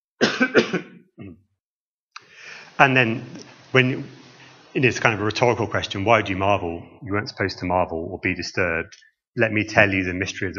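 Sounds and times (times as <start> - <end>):
person coughing: 0.2 - 1.4
speech: 0.4 - 1.5, 2.8 - 10.5.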